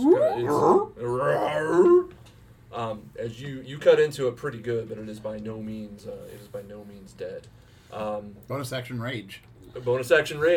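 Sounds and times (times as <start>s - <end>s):
speech: 0.0s - 0.9s, 3.3s - 10.5s
person vocally imitating an owlbear roar, half bear growl and half owl hoot: 0.0s - 2.1s.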